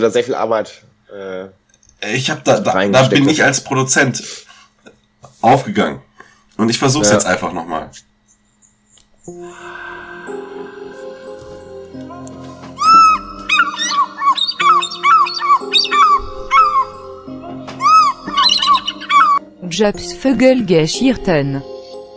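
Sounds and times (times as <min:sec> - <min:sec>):
speech: 0:00.0 - 0:04.5, 0:05.4 - 0:08.1, 0:09.2 - 0:09.8, 0:19.7 - 0:21.7
synth chords in an intro jingle: 0:09.3 - 0:22.1
squawking bird-like chirps: 0:12.8 - 0:19.4.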